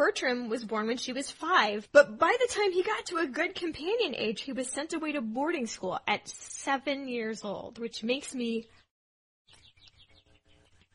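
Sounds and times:
speech: 0:00.1 - 0:08.8
birds singing outside the window: 0:09.5 - 0:10.9.

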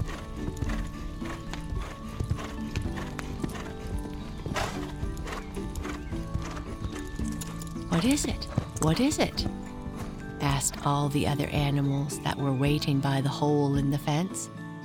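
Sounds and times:
horse hooves clip-clopping as horses run: 0:00.0 - 0:12.9
horse whinny: 0:02.3 - 0:06.8
speech: 0:08.0 - 0:09.7, 0:10.4 - 0:14.6.

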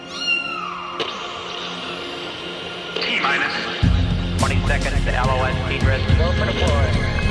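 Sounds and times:
kitten meowing: 0:00.0 - 0:01.1
speech: 0:01.0 - 0:01.3, 0:03.2 - 0:07.2.

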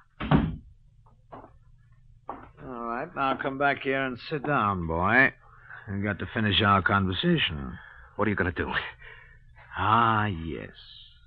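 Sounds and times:
door thudding shut: 0:00.2 - 0:00.7
speech: 0:03.1 - 0:09.2, 0:09.8 - 0:11.0.

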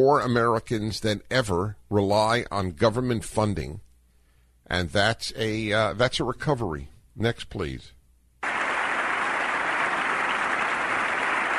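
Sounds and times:
speech: 0:00.0 - 0:03.8, 0:04.7 - 0:08.0
applause from a small number of people in a large hall: 0:08.4 - 0:11.5.

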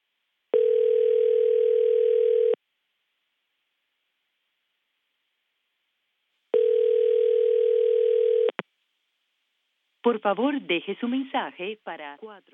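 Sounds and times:
outgoing phone call ringback tone: 0:00.5 - 0:02.6, 0:06.5 - 0:08.5
speech: 0:10.1 - 0:12.5.

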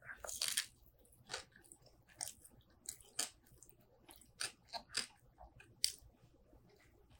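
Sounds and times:
crunchy chewing of sour pickles on sourdough toast with melted butter: 0:00.0 - 0:07.1.

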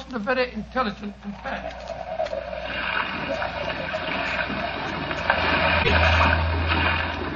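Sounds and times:
speech: 0:00.1 - 0:04.5
rough sea waves around a small boat: 0:01.6 - 0:07.3
deep low rumble: 0:03.3 - 0:07.3.

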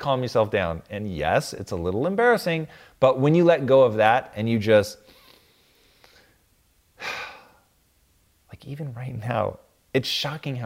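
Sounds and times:
speech: 0:00.0 - 0:05.2, 0:08.6 - 0:10.6
slow calming breath: 0:05.0 - 0:06.4, 0:07.0 - 0:07.7.

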